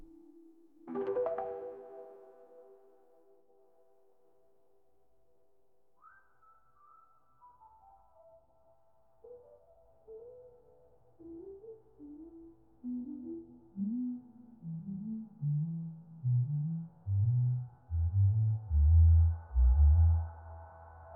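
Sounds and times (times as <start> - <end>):
interlude music: 0.9 - 3.0, 13.1 - 20.6.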